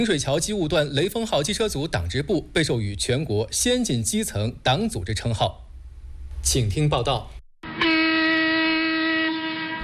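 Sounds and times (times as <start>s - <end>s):
speech: 0.0s - 5.6s, 6.4s - 7.9s
train horn blast as train departs: 7.6s - 9.8s.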